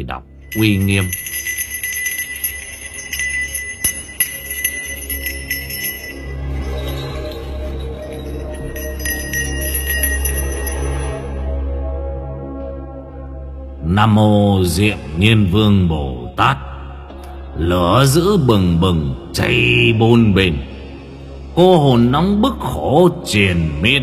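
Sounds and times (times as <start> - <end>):
speech: 0.0 - 1.3, 13.9 - 16.7, 17.6 - 20.7, 21.6 - 24.0
Buddhist temple bell ringing: 0.5 - 11.6.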